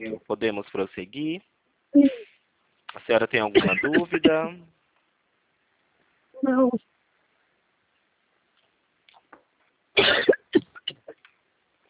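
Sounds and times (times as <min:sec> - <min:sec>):
speech: 0:00.0 - 0:02.2, 0:03.0 - 0:04.8, 0:06.4 - 0:06.9
woman coughing during a phone call in a bathroom: 0:03.6 - 0:04.5, 0:10.0 - 0:11.2.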